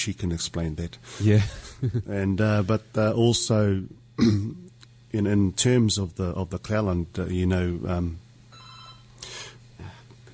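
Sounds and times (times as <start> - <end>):
speech: 0.0 - 8.2
telephone ringing with an electronic trill: 8.5 - 9.1.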